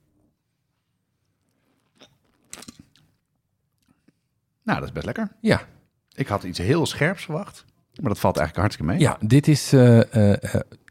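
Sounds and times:
person sipping liquor from a hip flask: 1.4s - 3.1s
mouth clicks and swallows: 1.4s - 4.2s
speech: 4.7s - 10.8s.

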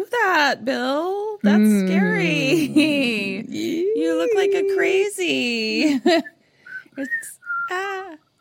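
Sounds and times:
speech: 0.2s - 6.3s, 7.0s - 8.0s
person whistling a short wavering tune: 6.2s - 7.8s.

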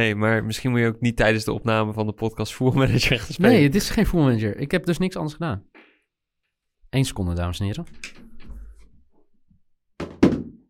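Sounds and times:
speech: 0.0s - 5.7s, 6.9s - 8.2s
laptop thrown hard onto the floor: 10.0s - 10.6s.

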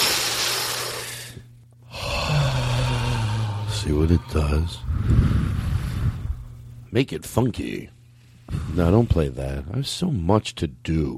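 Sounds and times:
deep, airy breath: 0.9s - 3.8s, 4.7s - 6.6s, 8.1s - 9.0s
speech: 3.8s - 5.5s, 6.9s - 11.1s.

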